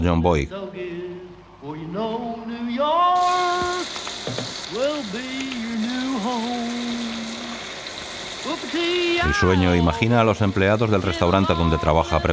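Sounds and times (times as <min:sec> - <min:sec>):
speech: 0:00.0 - 0:00.6, 0:04.7 - 0:06.9, 0:08.5 - 0:12.3
man singing loudly in the shower: 0:00.0 - 0:04.0, 0:04.6 - 0:07.7, 0:08.4 - 0:12.3
shower water running: 0:03.2 - 0:12.3.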